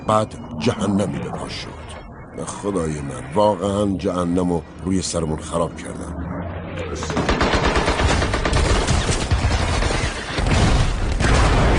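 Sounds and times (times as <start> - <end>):
speech: 0.1 - 6.2, 6.8 - 7.5
machine gun fire: 7.1 - 11.7.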